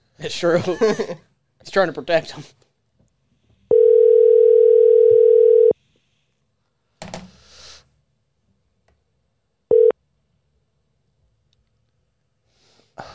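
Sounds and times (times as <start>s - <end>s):
speech: 0.2s - 2.6s
unanswered phone line ringing tone: 3.7s - 5.8s, 9.7s - 10.0s.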